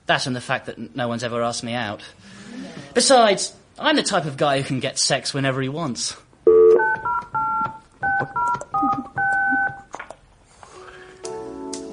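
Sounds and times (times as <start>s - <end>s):
speech: 0.1s - 6.3s
telephone keypad dialing tones: 6.5s - 9.9s.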